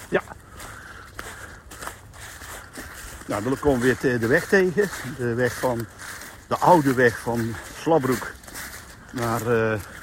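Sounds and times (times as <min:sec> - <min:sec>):
footsteps crunching along a path: 0:00.0 - 0:10.0
speech: 0:00.1 - 0:00.4, 0:03.3 - 0:08.4, 0:09.1 - 0:09.9.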